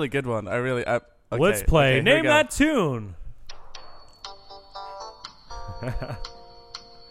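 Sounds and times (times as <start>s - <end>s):
speech: 0.0s - 3.2s, 5.8s - 6.4s
phone ringtone playing a bright electronic melody: 3.5s - 7.0s.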